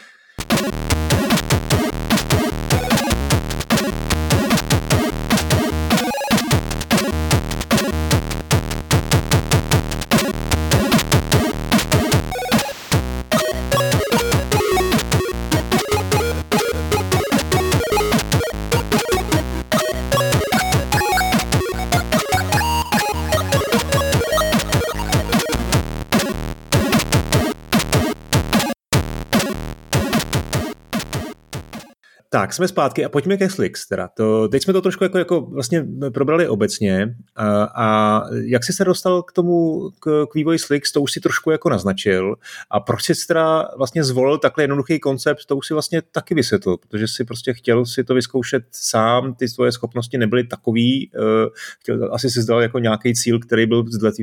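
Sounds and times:
Atari 2600 chiptune music with square-wave tones: 0:00.4 - 0:32.0
speech: 0:32.5 - 0:54.2.

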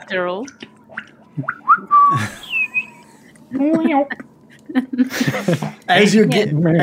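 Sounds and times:
speech: 0:00.1 - 0:00.7, 0:01.4 - 0:02.5, 0:03.5 - 0:06.8
person whistling a goat call: 0:01.7 - 0:03.0
laughter: 0:02.0 - 0:06.3.

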